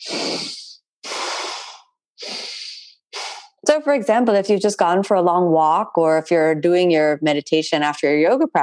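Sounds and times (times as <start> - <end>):
deep breathing through the nose during meditation practice: 0.0 - 3.6
speech: 3.7 - 8.6.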